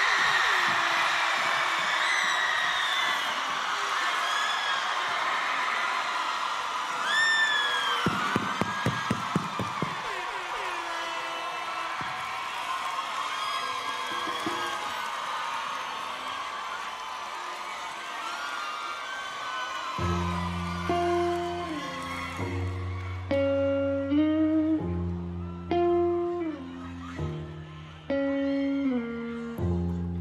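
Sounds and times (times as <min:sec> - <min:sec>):
large festival crowd cheering and shouting: 0:00.0 - 0:30.2.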